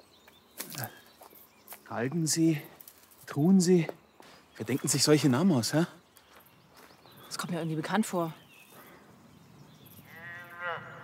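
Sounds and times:
speech: 0.8s - 1.0s, 1.9s - 2.7s, 3.3s - 4.0s, 4.6s - 6.0s, 7.5s - 8.4s
cow mooing: 10.0s - 11.0s.

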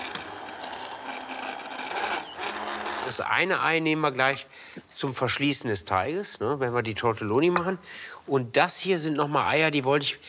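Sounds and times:
immersion blender mixing butter into a sauce: 0.0s - 3.1s
speech: 3.1s - 10.2s.

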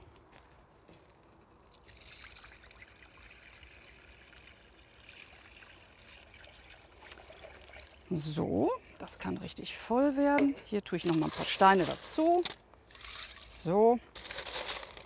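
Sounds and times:
water pouring into a plant container holding a water plant: 1.7s - 8.3s, 12.9s - 13.6s
speech: 8.1s - 12.6s, 13.6s - 14.1s.

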